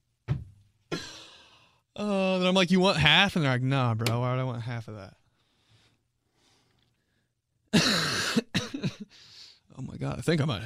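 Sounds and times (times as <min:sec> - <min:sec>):
person coughing harshly: 0:00.9 - 0:01.2, 0:07.7 - 0:09.1
speech: 0:02.0 - 0:05.2, 0:07.8 - 0:10.6.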